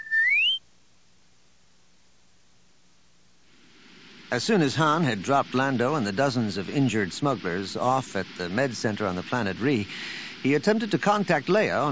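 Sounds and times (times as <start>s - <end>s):
electronic droid whistle gliding upward in pitch: 0.0s - 0.6s
speech: 4.3s - 11.9s.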